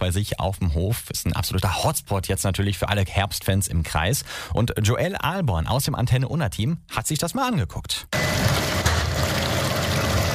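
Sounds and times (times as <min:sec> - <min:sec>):
speech: 0:00.0 - 0:08.8
rotating brush machine washing pumpkins under running water: 0:08.2 - 0:10.3.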